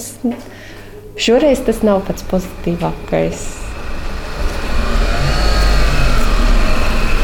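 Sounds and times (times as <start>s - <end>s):
speech: 0.2s - 0.6s, 1.2s - 3.6s
street noise: 0.8s - 7.2s
car engine revving while turning around: 1.0s - 7.2s.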